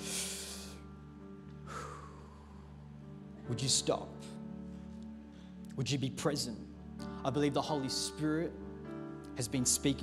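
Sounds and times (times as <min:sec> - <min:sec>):
deep breath: 0:00.0 - 0:00.8, 0:01.6 - 0:03.0
speech: 0:03.5 - 0:04.4, 0:05.8 - 0:08.6, 0:09.4 - 0:10.0.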